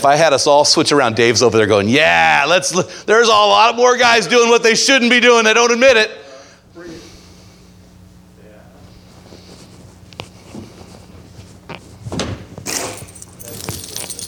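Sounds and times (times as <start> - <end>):
speech: 0.0 - 6.2
low steady hum: 0.0 - 14.2
bunch of keys jingling and rattling: 12.7 - 14.2.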